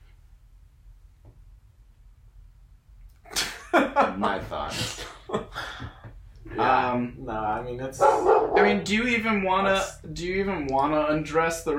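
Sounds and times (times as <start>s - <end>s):
laughter: 3.3s - 6.2s
speech: 6.7s - 11.7s
dog barking: 8.0s - 8.9s.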